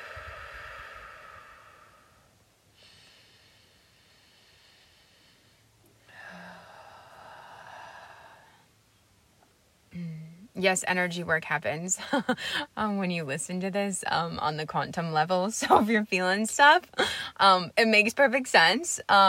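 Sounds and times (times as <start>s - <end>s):
person breathing deeply: 0.0s - 8.7s
speech: 10.6s - 19.2s.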